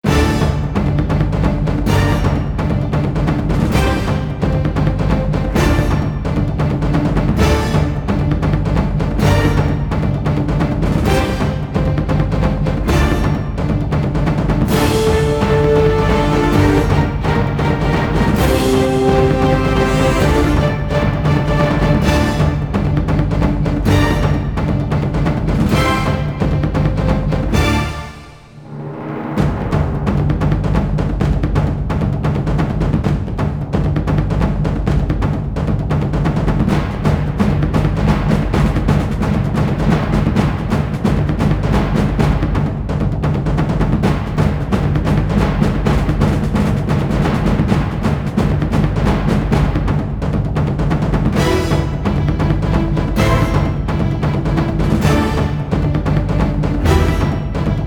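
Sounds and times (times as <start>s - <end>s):
drums playing: 0.0s - 57.8s.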